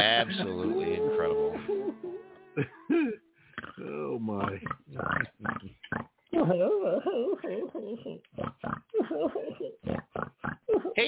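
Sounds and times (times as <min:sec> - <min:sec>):
speech: 0:00.0 - 0:01.4, 0:02.6 - 0:02.8
laughter: 0:00.0 - 0:03.2, 0:06.4 - 0:08.2, 0:08.9 - 0:09.8
pigs grunting and squealing: 0:00.0 - 0:06.6, 0:07.4 - 0:11.0.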